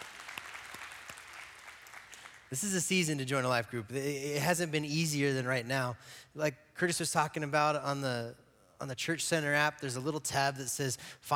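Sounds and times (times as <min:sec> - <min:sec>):
audience applause: 0:00.0 - 0:02.5
speech: 0:02.5 - 0:11.3.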